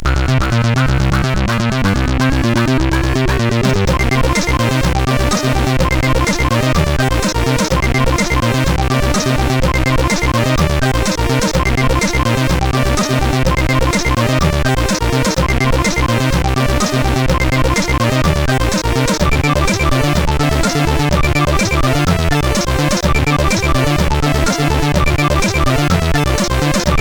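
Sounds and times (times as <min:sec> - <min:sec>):
dark chiptune music on CSG8580R5 sound chip: 0:00.0 - 0:26.9.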